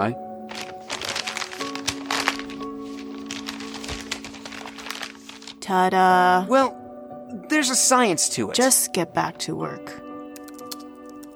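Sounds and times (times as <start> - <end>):
speech: 0.0 - 0.2, 5.7 - 10.0
paper being folded and creased into a paper airplane: 0.5 - 5.7.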